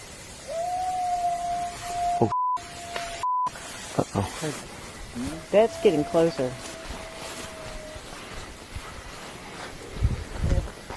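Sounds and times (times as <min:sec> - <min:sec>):
hiss: 0:00.0 - 0:10.9
animal howling: 0:00.5 - 0:03.2, 0:05.3 - 0:08.3
speech: 0:04.0 - 0:06.7.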